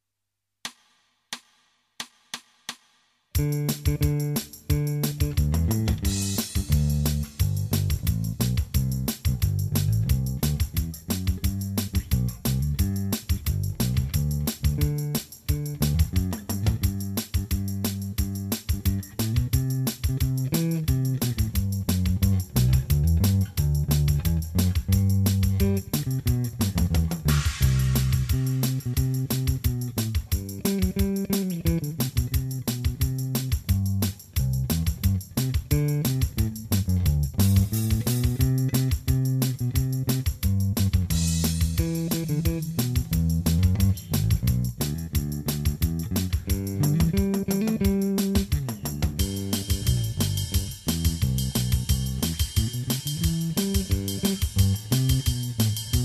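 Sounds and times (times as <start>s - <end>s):
country pickin backing track: 3.4s - 56.0s.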